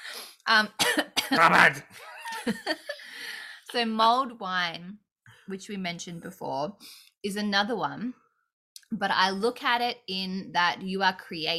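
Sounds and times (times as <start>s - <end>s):
speech: 0.5s - 3.0s, 3.7s - 8.2s, 8.9s - 11.5s
person coughing: 0.8s - 1.7s.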